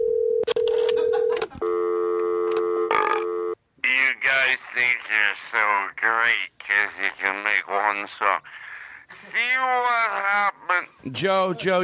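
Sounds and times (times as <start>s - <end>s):
telephone dialing tones: 0.0s - 3.6s
speech: 4.6s - 8.6s, 9.2s - 11.8s.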